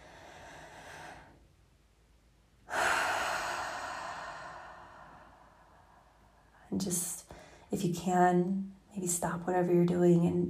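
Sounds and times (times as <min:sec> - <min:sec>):
deep breathing during a guided breathing exercise: 0:00.0 - 0:01.5, 0:02.7 - 0:06.6
speech: 0:06.8 - 0:10.4.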